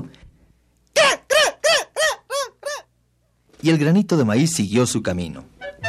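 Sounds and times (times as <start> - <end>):
hen clucking: 1.0 - 2.9
speech: 3.6 - 5.7.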